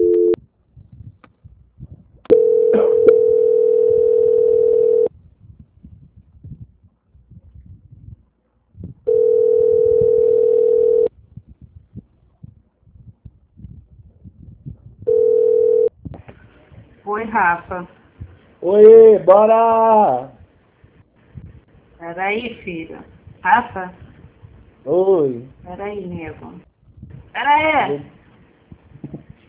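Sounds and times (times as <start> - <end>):
telephone line tones during a call transfer: 0.0 - 0.4, 2.3 - 5.1, 9.1 - 11.1, 15.1 - 15.9
faint low sound: 0.0 - 29.4
speech: 17.4 - 18.0, 18.6 - 20.4, 22.0 - 24.0, 24.8 - 26.7, 27.4 - 28.2.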